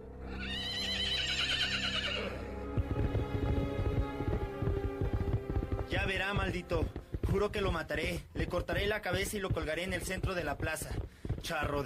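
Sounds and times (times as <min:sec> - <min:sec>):
horse whinnying: 0:00.2 - 0:02.5
horse hooves galloping along a road: 0:01.9 - 0:11.8
speech: 0:06.5 - 0:11.8.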